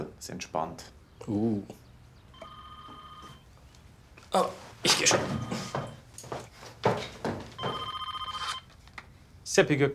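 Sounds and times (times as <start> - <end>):
speech: 0.2 - 1.8, 4.3 - 5.8, 9.6 - 9.9
mobile phone ringing with electronic trill: 2.4 - 3.5, 5.2 - 6.0, 7.6 - 8.7.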